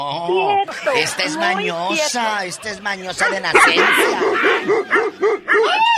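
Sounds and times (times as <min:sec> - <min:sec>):
speech: 0:00.0 - 0:05.9
laughter: 0:00.1 - 0:05.6
dog barking rapidly: 0:03.2 - 0:05.8.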